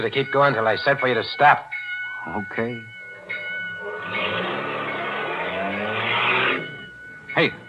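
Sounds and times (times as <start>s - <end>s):
speech: 0.0s - 3.0s, 7.4s - 7.6s
car engine running roughly and stalling: 3.9s - 7.0s.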